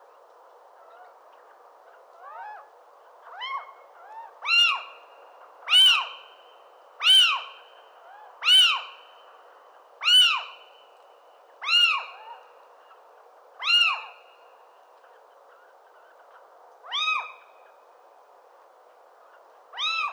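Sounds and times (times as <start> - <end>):
little owl Athene noctua: 3.3 - 5.1, 5.7 - 6.3, 7.0 - 9.1, 10.0 - 10.7, 11.6 - 13.0, 13.6 - 14.3, 15.5 - 17.6, 19.3 - 20.1.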